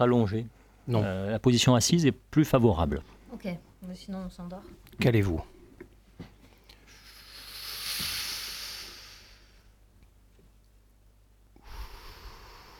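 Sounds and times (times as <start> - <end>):
speech: 0.0 - 5.6
slow deep breathing during a seated guided breathing exercise: 6.6 - 9.8, 11.6 - 12.7.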